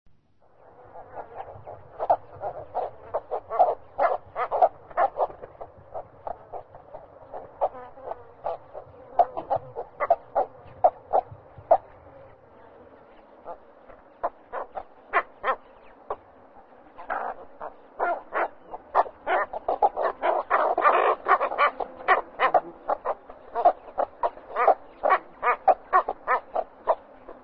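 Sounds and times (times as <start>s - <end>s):
cattle egret call: 0.9s - 11.8s, 14.2s - 16.2s, 17.0s - 27.4s.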